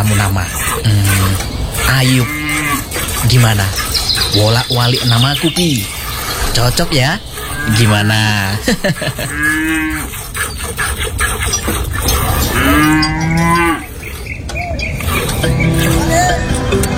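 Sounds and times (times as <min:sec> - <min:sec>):
laughter: 0:00.0 - 0:02.5, 0:03.2 - 0:09.7, 0:14.4 - 0:16.9
cow mooing: 0:00.0 - 0:03.8, 0:07.3 - 0:10.3, 0:12.0 - 0:16.9
speech: 0:00.0 - 0:06.0, 0:06.6 - 0:10.2
faint murmuring: 0:00.0 - 0:16.9
outdoor noise: 0:00.0 - 0:16.9.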